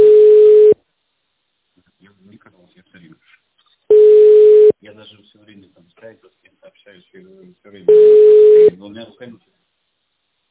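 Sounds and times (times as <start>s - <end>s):
telephone dial or ringback tone: 0.0s - 0.8s, 3.9s - 4.7s, 7.9s - 8.7s.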